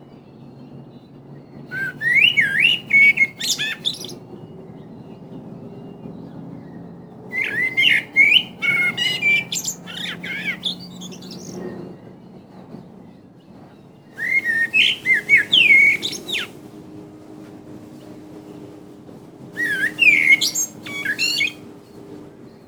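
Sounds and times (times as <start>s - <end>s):
common blackbird song: 1.8s - 4.2s, 7.3s - 11.6s, 14.2s - 16.6s, 19.6s - 21.6s.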